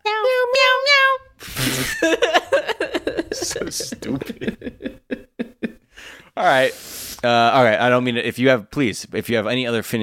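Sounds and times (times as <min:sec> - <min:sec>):
cat meowing with wavering drawn-out cries: 0:00.1 - 0:01.3
laughter: 0:01.4 - 0:05.9
speech: 0:03.7 - 0:04.5, 0:06.5 - 0:10.0.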